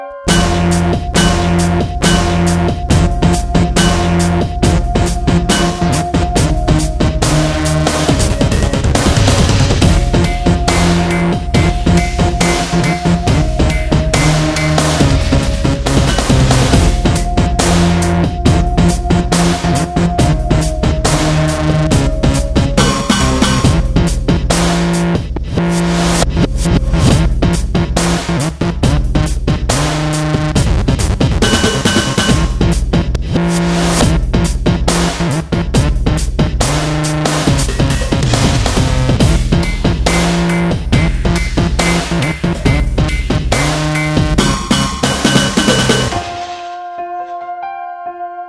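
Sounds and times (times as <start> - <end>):
dubstep music: 0.3 - 47.5.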